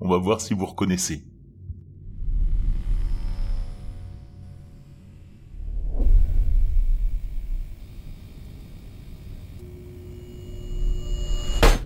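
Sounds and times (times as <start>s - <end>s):
speech: 0.1s - 1.3s
deep rumble: 1.2s - 11.8s
hissing television static crackling: 6.6s - 9.6s.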